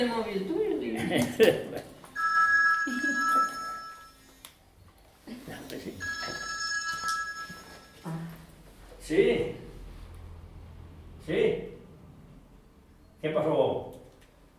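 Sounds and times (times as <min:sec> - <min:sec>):
speech: 0:00.0 - 0:01.8, 0:09.1 - 0:09.6
mobile phone ringtone: 0:02.2 - 0:04.4, 0:06.0 - 0:08.1.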